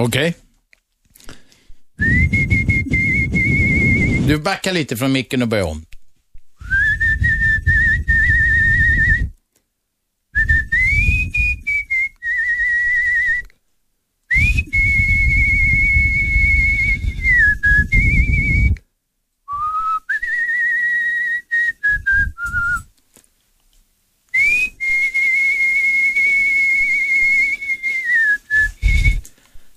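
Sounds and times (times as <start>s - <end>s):
speech: 0.0s - 0.4s, 4.3s - 5.9s
person whistling an opera aria melody: 2.0s - 4.4s, 6.6s - 9.4s, 10.4s - 13.5s, 14.3s - 18.8s, 19.5s - 22.9s, 24.4s - 29.3s.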